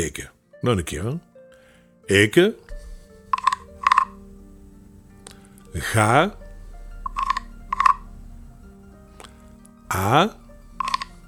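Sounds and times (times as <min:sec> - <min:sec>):
speech: 0:00.0 - 0:01.3, 0:02.1 - 0:02.6, 0:05.8 - 0:06.4, 0:09.9 - 0:10.4
quiet hum: 0:01.0 - 0:11.2
frog croaking: 0:02.6 - 0:11.2.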